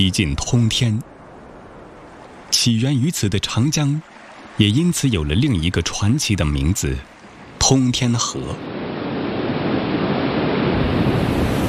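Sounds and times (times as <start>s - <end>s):
speech: 0.0s - 1.1s, 2.6s - 8.8s
rushing river water: 0.0s - 11.6s.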